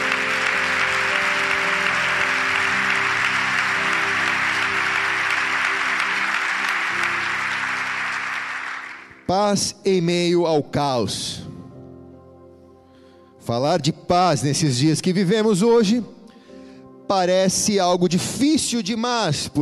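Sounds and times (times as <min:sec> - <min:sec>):
large church audience applauding: 0:00.0 - 0:09.3
speech: 0:09.3 - 0:11.5, 0:13.5 - 0:16.2, 0:17.1 - 0:19.6.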